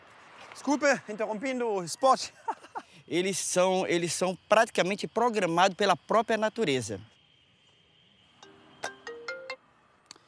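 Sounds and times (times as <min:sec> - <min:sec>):
speech: 0:00.6 - 0:07.1
laughter: 0:02.2 - 0:03.0
phone ringtone for an incoming call: 0:08.4 - 0:09.6.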